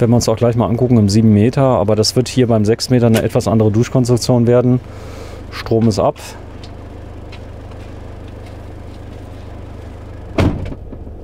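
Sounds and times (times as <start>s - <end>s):
speech: 0.0s - 6.4s
low hum: 0.0s - 11.2s
6-metre van door pulled shut with a thud: 10.3s - 11.2s.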